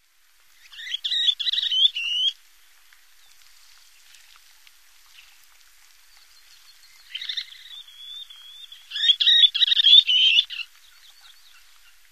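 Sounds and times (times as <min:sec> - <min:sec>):
least sandpiper rapid high trilled calls: 0:00.6 - 0:02.4, 0:06.9 - 0:12.0.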